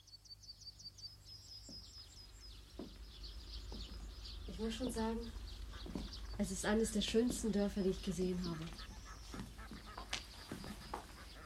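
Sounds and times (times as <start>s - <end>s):
steady outdoor hiss: 0.0s - 11.4s
speech: 4.5s - 5.4s, 6.4s - 8.9s
ducks quacking at a village pond: 7.8s - 11.4s.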